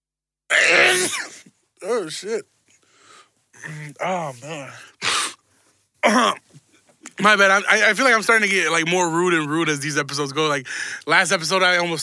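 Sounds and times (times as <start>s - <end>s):
loud sneeze: 0.5s - 1.5s, 5.0s - 5.4s
sharp coughs: 0.5s - 1.5s, 6.0s - 6.6s
speech: 0.5s - 2.6s, 3.6s - 4.9s, 6.0s - 6.6s, 7.2s - 12.0s
faint breath: 2.8s - 3.9s, 10.7s - 11.0s.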